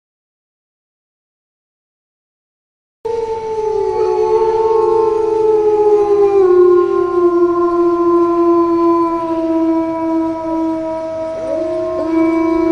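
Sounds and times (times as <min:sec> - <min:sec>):
wolf howling: 0:03.1 - 0:12.6.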